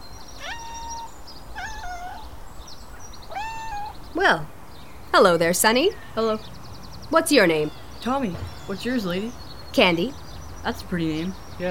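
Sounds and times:
cat meowing: 0.4s - 2.4s, 3.3s - 4.0s
speech: 4.2s - 4.5s, 5.2s - 11.6s.

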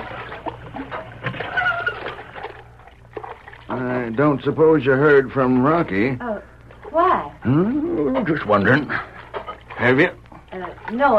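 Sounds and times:
hand water pump inside a house squeaking: 0.0s - 2.6s, 9.3s - 10.0s
water pattering from a hand water pump: 0.0s - 11.1s
speech: 3.7s - 6.3s, 7.4s - 9.0s, 9.8s - 10.2s, 10.9s - 11.1s.

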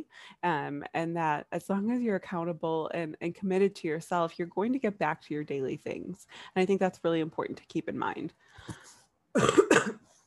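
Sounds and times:
speech: 0.0s - 10.0s
person coughing harshly: 9.4s - 10.1s.

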